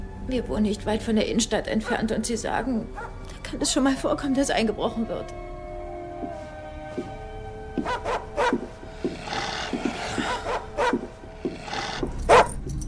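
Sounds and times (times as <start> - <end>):
speech: 0.3 - 5.5, 7.8 - 8.6
dog growling and snarling: 7.8 - 12.7.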